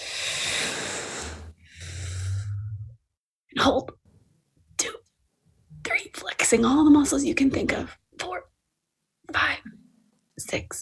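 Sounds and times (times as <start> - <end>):
deep breath drawn in during a breathing and muscle-tensing exercise: 0.0 - 2.9
speech: 3.6 - 4.0, 6.5 - 8.0, 10.5 - 10.8.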